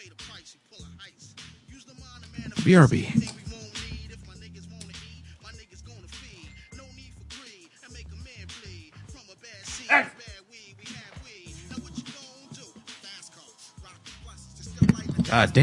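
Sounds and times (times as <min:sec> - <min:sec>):
movement: 0:02.2 - 0:04.1, 0:10.9 - 0:12.9, 0:14.7 - 0:15.6
speech: 0:02.6 - 0:03.2, 0:15.3 - 0:15.6
dog barking and yipping while someone takes a hand towel from it: 0:09.7 - 0:10.2.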